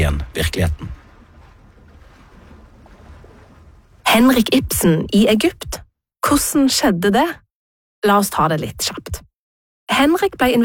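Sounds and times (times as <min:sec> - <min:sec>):
gentle waves lapping against a boat hull in Egypt: 0:00.0 - 0:05.6
speech: 0:00.1 - 0:01.0, 0:04.1 - 0:07.4, 0:08.0 - 0:09.1, 0:09.9 - 0:10.6.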